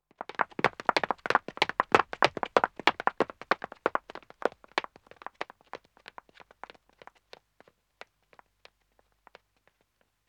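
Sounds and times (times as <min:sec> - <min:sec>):
one man running footsteps on dead-acoustic wood: 0:00.3 - 0:07.4.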